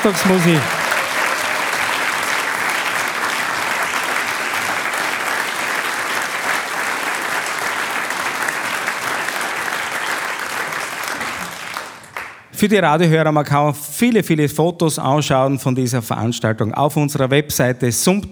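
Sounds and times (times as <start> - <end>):
speech: 0.0 - 0.8, 12.6 - 18.3
large audience applauding a folk music band at a live event: 0.0 - 12.5.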